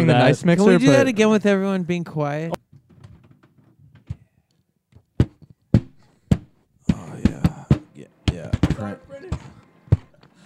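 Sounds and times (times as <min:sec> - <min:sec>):
speech: 0:00.0 - 0:02.6
microphones hitting each other tip to tip: 0:02.6 - 0:10.4.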